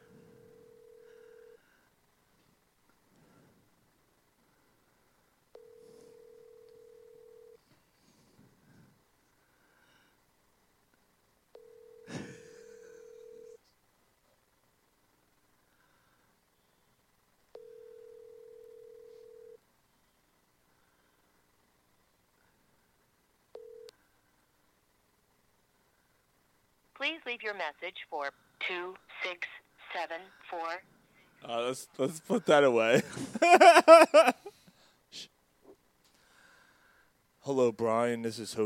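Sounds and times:
phone ringback tone on an outgoing call: 0.0 - 1.6, 5.5 - 7.6, 11.5 - 13.6, 17.6 - 19.6, 23.6 - 23.9
speech: 27.0 - 34.4, 37.5 - 38.6
laughter: 32.9 - 34.5.

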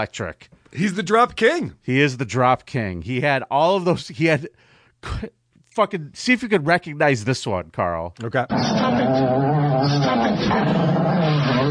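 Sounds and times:
speech: 0.0 - 11.7
dog growling: 8.5 - 11.7.

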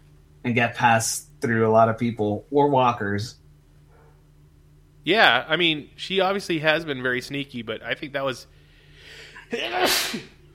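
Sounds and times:
speech: 0.4 - 3.4, 5.0 - 10.4
sneeze: 9.5 - 10.4.

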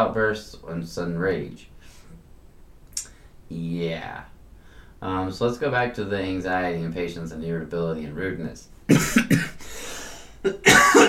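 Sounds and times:
speech: 0.0 - 1.7, 3.5 - 4.3, 5.0 - 9.5, 10.4 - 11.0
person coughing: 8.9 - 9.7, 10.4 - 11.0.

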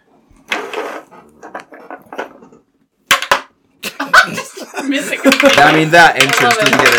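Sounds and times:
dice rolled for initiative clattering on a hard tabletop: 3.1 - 3.5, 5.3 - 6.9
laughter: 3.8 - 6.0
speech: 4.2 - 6.9.

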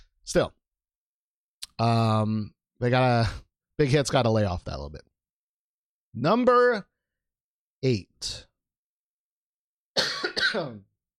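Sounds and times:
speech: 0.3 - 0.6, 1.8 - 5.1, 6.1 - 6.9, 7.8 - 8.5, 10.3 - 10.9
person coughing in a song recording: 10.0 - 10.9.

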